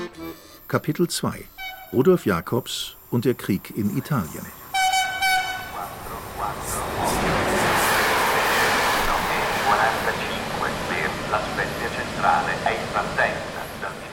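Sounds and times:
train running along the coast through tunnels: 0.2 - 14.1
speech: 0.7 - 4.6
train horn: 4.7 - 6.0.

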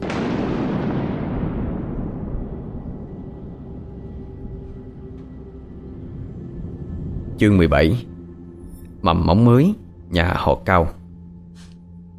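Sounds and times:
rolling thunder as a storm breaks over a small village: 0.0 - 7.4
speech: 7.4 - 8.1, 9.0 - 11.0.

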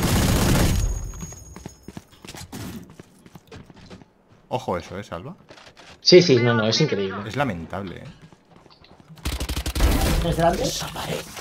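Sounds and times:
video game gunfire shooting through a wall: 0.0 - 1.0, 9.2 - 10.7
speech: 4.5 - 5.5, 6.1 - 8.3, 10.2 - 11.3.

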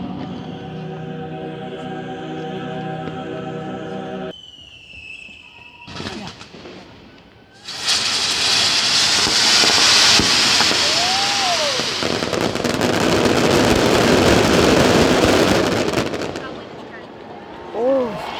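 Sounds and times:
fireworks whistling: 0.0 - 1.4, 4.3 - 17.4
festival fireworks display with firecrackers in Elche: 4.3 - 17.5.

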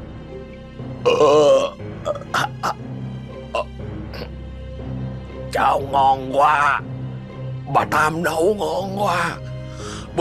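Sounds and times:
old man burping loudly from deep in his throat: 1.0 - 2.8, 3.5 - 4.3
speech: 5.6 - 6.9, 7.7 - 9.5.

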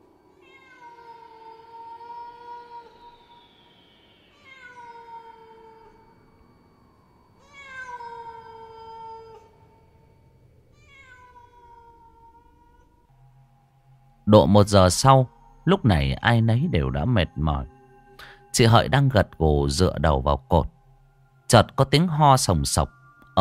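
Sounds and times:
stray cat yowling far off at night: 0.4 - 3.4, 4.3 - 6.2, 7.4 - 9.8, 10.7 - 13.0
speech: 14.3 - 20.7, 21.5 - 23.3.

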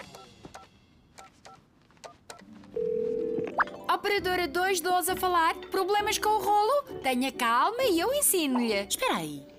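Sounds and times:
steady telephone tone: 2.7 - 3.6
speech: 4.0 - 9.5.

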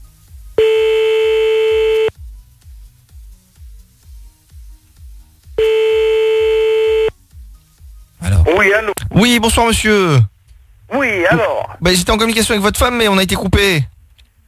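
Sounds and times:
telephone ringing on the line while calling someone back: 0.6 - 2.1, 5.6 - 7.1
speech: 8.6 - 10.3, 11.0 - 13.9.

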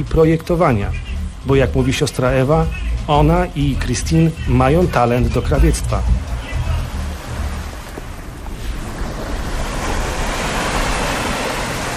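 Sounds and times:
speech: 0.0 - 6.2
Atlantic Ocean surf breaking at a small coastal town: 0.0 - 11.9
gusty wind at a small coastal town: 5.2 - 11.9.

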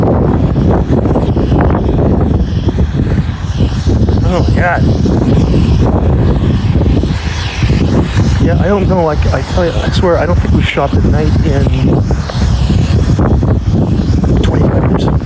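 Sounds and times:
heavy wind buffeting a microphone outdoors: 0.0 - 15.2
speech: 8.7 - 12.5.

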